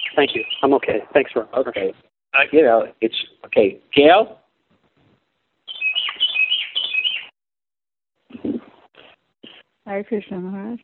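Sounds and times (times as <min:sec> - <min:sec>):
bird chirping: 0:00.0 - 0:00.8, 0:05.6 - 0:07.4
speech: 0:00.2 - 0:04.4, 0:09.9 - 0:10.8.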